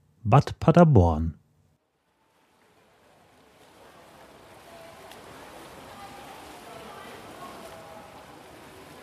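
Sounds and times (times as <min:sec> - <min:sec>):
speech: 0:00.2 - 0:01.4
splashing water in an indoor swimming pool in Paderborn: 0:02.4 - 0:09.0
voices murmuring and calling in an indoor swimming pool: 0:04.4 - 0:08.9.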